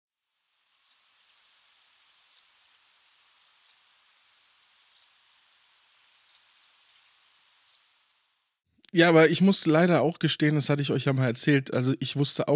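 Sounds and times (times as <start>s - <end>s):
cricket chirping: 5.0s - 5.2s, 6.3s - 6.5s
speech: 9.0s - 12.5s.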